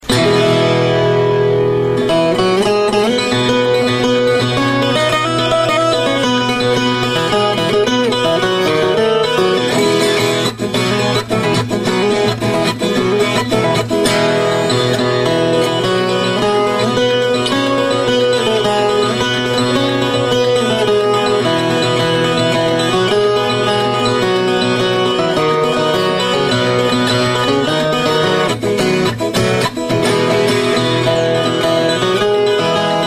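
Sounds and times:
viola caipira playing: 0.0s - 33.0s.

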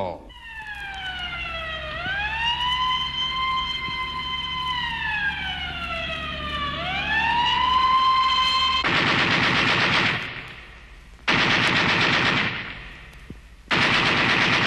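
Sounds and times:
wailing siren sweeping up and down: 0.3s - 8.9s
loud bursts of rapid machine gun fire: 8.8s - 13.1s, 13.7s - 14.6s.

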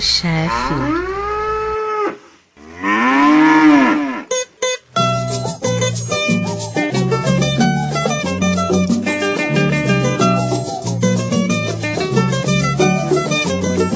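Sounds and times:
speech: 0.0s - 1.2s
ox mooing: 0.5s - 4.4s
rhythmic music: 4.8s - 13.9s.

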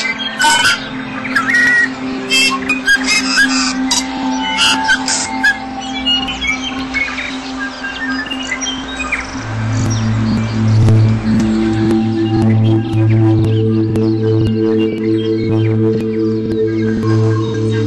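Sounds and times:
New Zealand temperate forest birdsong echoing among trees: 0.0s - 17.8s.

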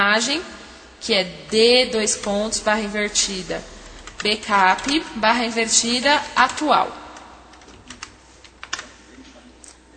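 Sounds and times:
speech: 0.0s - 7.0s
typing a file path on a computer keyboard: 1.9s - 8.9s.

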